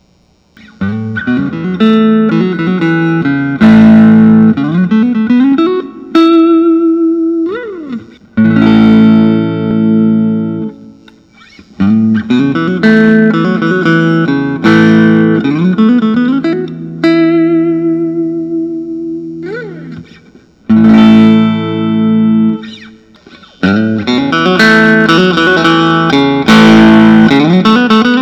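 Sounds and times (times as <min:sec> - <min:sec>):
chunky Fender Telecaster C chord: 0:00.6 - 0:11.2, 0:11.8 - 0:28.2.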